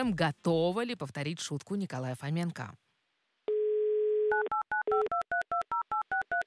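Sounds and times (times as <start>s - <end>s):
speech: 0.0s - 2.8s
telephone dial tone: 3.5s - 6.4s.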